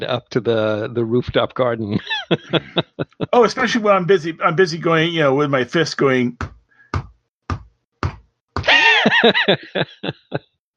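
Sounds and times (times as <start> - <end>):
speech: 0.0 - 6.6, 9.0 - 10.5
laughter: 1.9 - 5.4, 8.6 - 10.4
sharp evenly spaced taps: 6.4 - 8.8.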